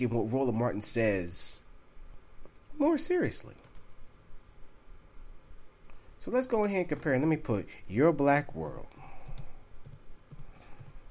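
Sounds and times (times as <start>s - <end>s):
speech: 0.0s - 1.6s, 2.8s - 3.7s, 6.2s - 9.0s
typing on a computer keyboard: 9.2s - 11.0s.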